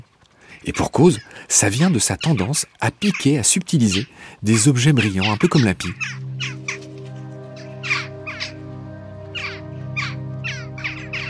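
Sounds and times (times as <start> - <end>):
speech: 0.6 - 6.6
steady low hum: 5.8 - 11.2
crow cawing: 6.0 - 8.6, 9.2 - 11.2.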